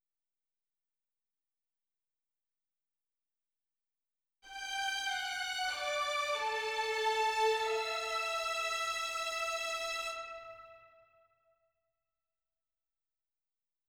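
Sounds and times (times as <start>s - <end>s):
violins melody: 4.5s - 10.8s.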